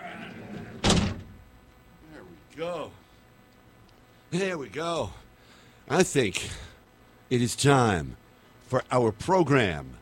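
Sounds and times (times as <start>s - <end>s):
heavy door slamming shut: 0.7s - 1.4s
speech: 2.6s - 3.0s, 4.3s - 5.2s, 5.9s - 6.7s, 7.3s - 9.9s.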